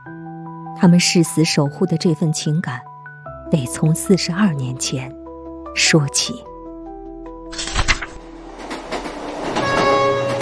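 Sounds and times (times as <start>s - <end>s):
speech: 0.8s - 2.9s, 3.5s - 5.2s, 5.8s - 6.5s
passenger train from Beijing to Datong rolling along tracks at night: 8.2s - 10.4s
metallic clatter of passenger train wheels: 8.4s - 10.4s.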